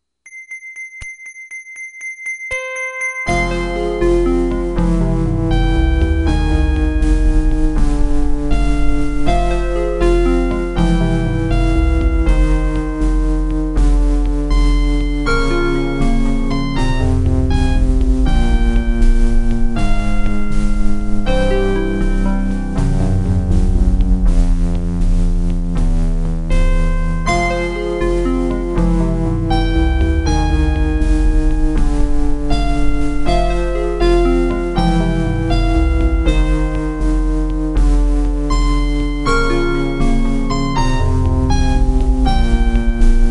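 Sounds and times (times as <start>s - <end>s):
OPL3 FM synth MIDI music: 3.3s - 43.2s.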